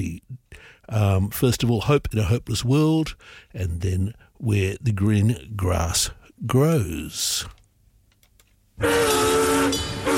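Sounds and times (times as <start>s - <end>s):
speech: 0.0s - 0.2s, 0.9s - 7.6s, 8.8s - 9.8s
train horn blaring: 8.8s - 10.1s.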